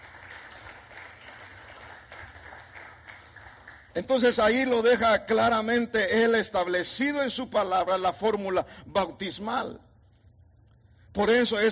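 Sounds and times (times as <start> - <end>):
audience applauding: 0.0 - 4.0
speech: 4.0 - 9.9, 11.2 - 11.6.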